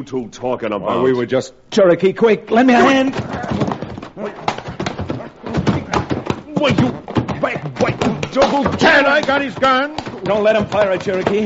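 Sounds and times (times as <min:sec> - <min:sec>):
speech: 0:00.0 - 0:04.5, 0:06.6 - 0:11.4
U.S. Army wagon noise: 0:02.6 - 0:11.4
horses pulling U.S. Army wagons clip-clopping: 0:02.8 - 0:11.4.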